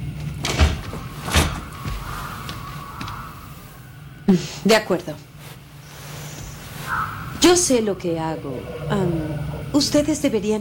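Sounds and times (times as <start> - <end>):
faint hum: 0.0 - 10.5
door pushed shut and latching: 0.4 - 3.2
speech: 4.3 - 5.3, 7.4 - 10.5.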